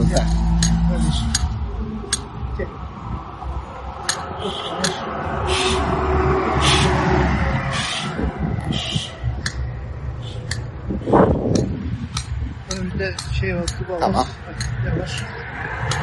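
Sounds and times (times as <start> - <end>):
cars passing on a busy street in Üsküdar: 0.0 - 16.0
speech: 0.1 - 0.4, 1.1 - 1.5, 2.6 - 2.8, 4.4 - 5.8, 13.0 - 16.0
sharp clicks: 0.3 - 1.5, 2.1 - 2.3, 4.0 - 5.0, 9.4 - 9.7, 10.3 - 10.7, 11.5 - 13.8, 14.6 - 16.0.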